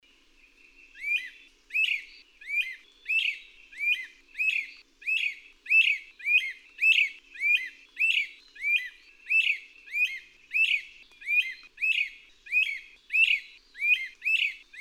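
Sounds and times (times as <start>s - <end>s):
bird song: 0.0s - 14.8s.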